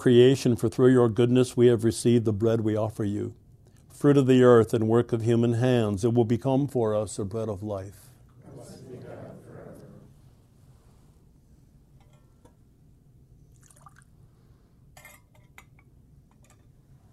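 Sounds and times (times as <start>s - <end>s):
speech: 0.0s - 3.4s, 4.0s - 8.0s
low hum: 0.0s - 17.1s
water and wine poured into a metal chalice: 13.5s - 14.2s.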